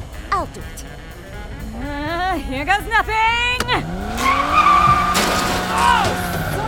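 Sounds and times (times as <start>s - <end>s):
car engine roar: 0.0s - 6.6s
speech: 0.4s - 1.2s, 1.8s - 4.6s
car tires squealing in a handbrake slide: 4.0s - 6.6s.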